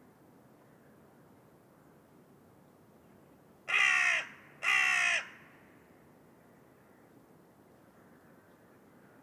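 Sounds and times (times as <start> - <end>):
carrion crow giving rasping caws: 3.7 - 5.5.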